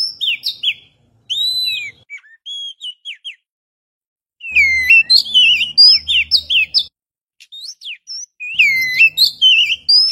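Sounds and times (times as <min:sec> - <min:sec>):
Oriental magpie-robin singing clear whistled notes: 0:00.0 - 0:03.5, 0:04.4 - 0:10.1.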